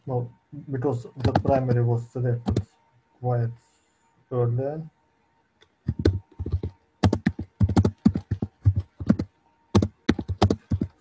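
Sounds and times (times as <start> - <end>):
speech: 0.1 - 3.6, 4.3 - 5.0
computer keyboard keys clacking: 1.2 - 1.8, 2.4 - 2.6, 5.9 - 10.9.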